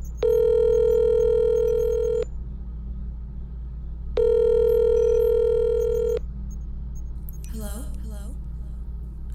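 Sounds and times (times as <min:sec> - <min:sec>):
low hum: 0:00.0 - 0:09.3
phone ringback tone for an outgoing call: 0:00.1 - 0:02.3, 0:04.2 - 0:06.2.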